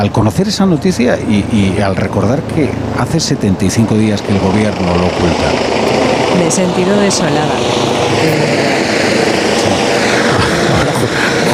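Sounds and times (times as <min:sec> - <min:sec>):
speech: 0:00.0 - 0:09.0, 0:11.0 - 0:11.5
helicopter hovering overhead: 0:00.0 - 0:11.5
laughter: 0:09.9 - 0:11.5.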